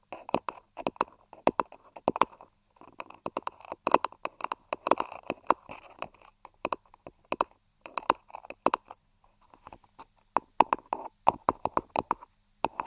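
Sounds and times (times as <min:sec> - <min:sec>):
quick crisp tapping: 0:00.0 - 0:12.8.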